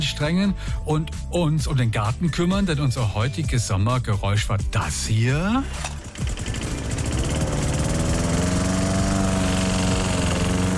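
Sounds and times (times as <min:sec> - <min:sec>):
speech: 0:00.0 - 0:06.0
lawn mower engine starting and running: 0:05.2 - 0:10.7.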